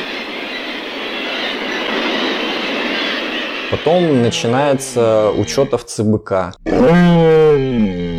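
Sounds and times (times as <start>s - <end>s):
Arctic seabird colony calling: 0.0s - 6.1s
speech: 3.7s - 7.7s.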